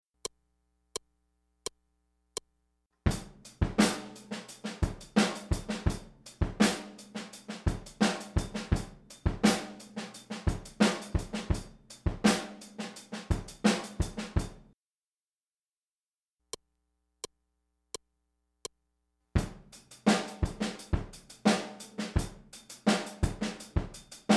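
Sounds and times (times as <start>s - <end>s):
fusion rhythms: 3.1s - 14.6s, 19.4s - 24.3s.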